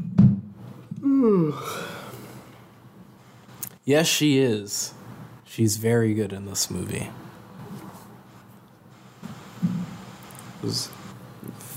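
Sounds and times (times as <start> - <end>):
person yawning: 0.9 - 2.4
speech: 1.0 - 2.0, 3.9 - 7.3, 10.6 - 11.0.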